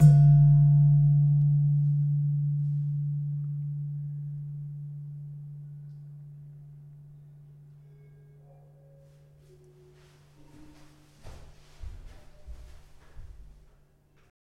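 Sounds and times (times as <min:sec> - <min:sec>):
slentem of a gamelan: 0:00.0 - 0:11.3.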